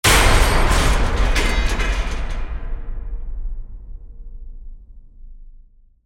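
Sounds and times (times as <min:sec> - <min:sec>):
metal door impact: 0:00.0 - 0:03.3.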